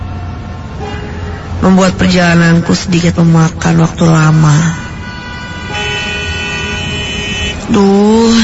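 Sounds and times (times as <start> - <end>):
car horns blaring in a traffic jam: 0.0 - 1.8, 4.4 - 8.4
low traffic rumble: 0.0 - 8.4
speech: 1.6 - 4.8, 7.7 - 8.4.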